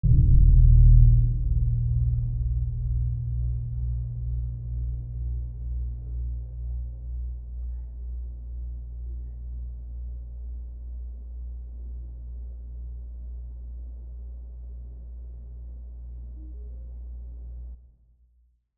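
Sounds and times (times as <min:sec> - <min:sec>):
reverb bass impacts: 0:00.0 - 0:07.8.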